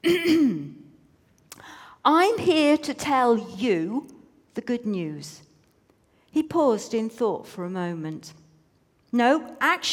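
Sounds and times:
throaty cough: 0:00.0 - 0:00.8
speech: 0:02.0 - 0:05.5, 0:06.3 - 0:08.4, 0:09.1 - 0:09.9.

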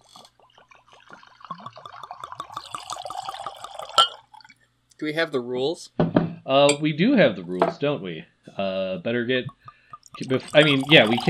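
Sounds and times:
drink glugging and splashing as poured into a glass: 0:00.0 - 0:04.6, 0:09.5 - 0:11.2
bright glass clink: 0:02.6 - 0:04.3, 0:09.6 - 0:11.2
speech: 0:05.0 - 0:09.6, 0:10.2 - 0:11.2.

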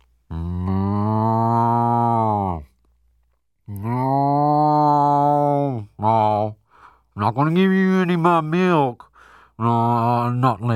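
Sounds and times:
voice imitating a cow mooing: 0:00.3 - 0:02.7, 0:03.7 - 0:06.6
speech: 0:07.3 - 0:10.7.

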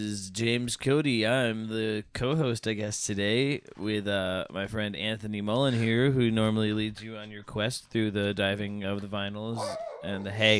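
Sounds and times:
speech: 0:00.0 - 0:10.5
dog barking: 0:09.6 - 0:10.4.

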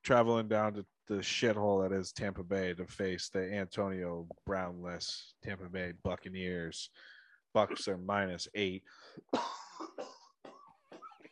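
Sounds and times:
speech: 0:00.0 - 0:10.2
person coughing harshly: 0:07.6 - 0:08.0, 0:09.3 - 0:11.2.

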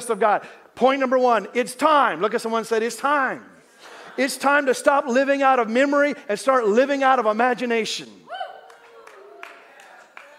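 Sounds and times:
speech: 0:00.1 - 0:03.5, 0:04.2 - 0:08.3
a couple of people clapping during a church sermon: 0:08.5 - 0:10.3.

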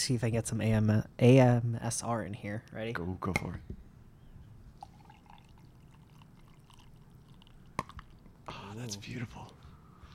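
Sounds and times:
speech: 0:00.0 - 0:03.8, 0:08.8 - 0:09.6
coffee poured from a French press: 0:04.8 - 0:08.4.

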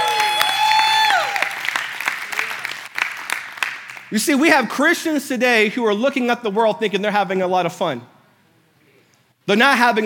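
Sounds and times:
person whooping: 0:00.0 - 0:01.6
audience clapping: 0:00.0 - 0:04.2
speech: 0:04.1 - 0:08.1, 0:09.5 - 0:10.0.

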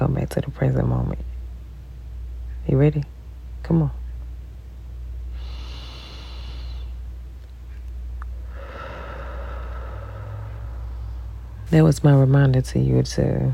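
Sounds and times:
speech: 0:00.0 - 0:01.3, 0:02.6 - 0:04.0, 0:11.7 - 0:13.5
steady low rumble: 0:00.0 - 0:13.5
person taking a deep breath: 0:05.4 - 0:07.0, 0:08.5 - 0:11.6.

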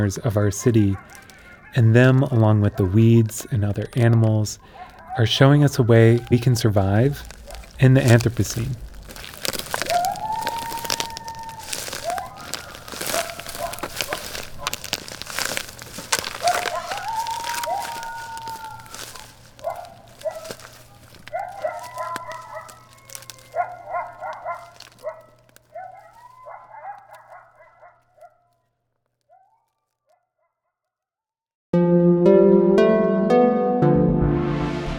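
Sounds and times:
speech: 0:00.0 - 0:08.8
pack of coyotes howling and yipping: 0:00.0 - 0:28.5
music: 0:31.8 - 0:34.9.

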